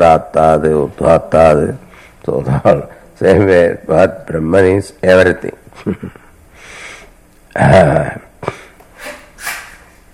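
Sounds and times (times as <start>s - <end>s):
speech: 0.0s - 6.2s, 7.6s - 9.2s
person sneezing: 8.4s - 9.9s.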